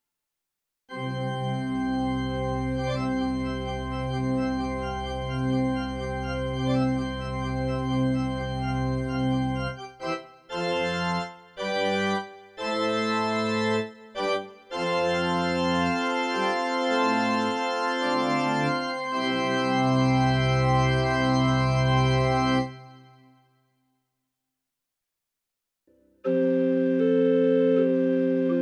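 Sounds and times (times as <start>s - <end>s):
electronic pipe organ: 0.9s - 23.2s, 25.9s - 28.6s.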